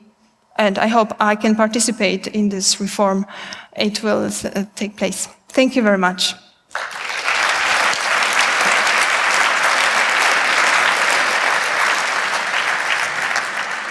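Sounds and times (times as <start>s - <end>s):
speech: 0.6s - 6.9s
large audience applause: 6.7s - 13.8s.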